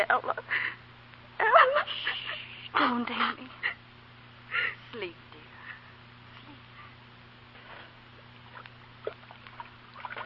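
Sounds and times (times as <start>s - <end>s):
speech: 0.0s - 0.6s, 2.9s - 3.6s
low electrical hum: 0.0s - 10.2s
water being stirred in a pot: 8.4s - 10.2s.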